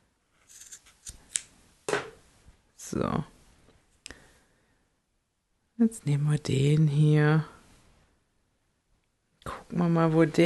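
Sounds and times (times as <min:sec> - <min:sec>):
scissors cutting threads: 0:00.5 - 0:01.5
speech: 0:02.9 - 0:03.4, 0:05.8 - 0:07.6, 0:09.7 - 0:10.4.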